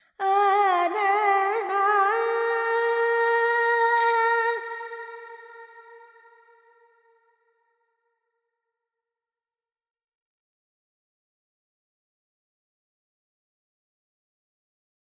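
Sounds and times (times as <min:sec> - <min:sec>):
Carnatic female vocal alap in Lydian mode: 0:00.0 - 0:06.0.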